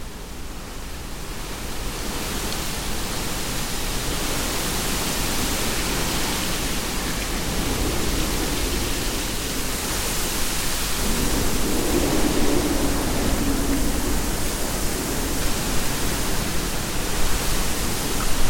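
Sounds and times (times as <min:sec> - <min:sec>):
wind: 0:00.0 - 0:18.4
trees rustling: 0:04.0 - 0:18.4.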